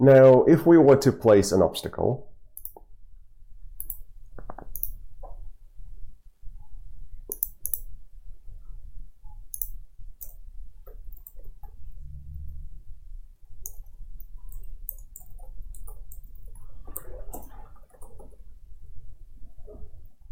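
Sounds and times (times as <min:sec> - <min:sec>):
speech: 0:00.0 - 0:02.3
low steady hum: 0:00.0 - 0:20.3
computer mouse clicking while selecting cells on an on-screen grid: 0:02.6 - 0:02.9, 0:03.8 - 0:05.0, 0:07.3 - 0:07.9, 0:09.5 - 0:11.8, 0:13.6 - 0:18.4.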